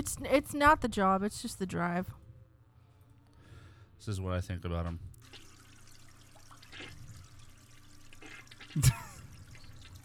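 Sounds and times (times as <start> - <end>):
speech: 0.0 - 2.2, 4.0 - 5.4, 8.7 - 9.1
toilet running with a low trickle of water: 5.2 - 10.0.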